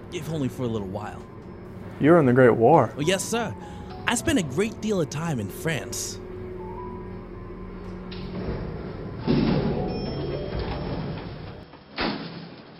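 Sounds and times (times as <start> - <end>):
elevator descending: 0.0 - 11.7
speech: 0.1 - 1.4, 2.0 - 6.2
elevator stopping thud: 7.7 - 11.8
elevator door sliding shut: 8.3 - 12.7.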